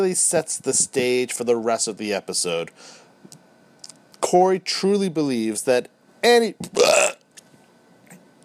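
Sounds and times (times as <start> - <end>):
speech: 0.0 - 3.0, 4.3 - 7.1
loud burp: 6.7 - 7.2.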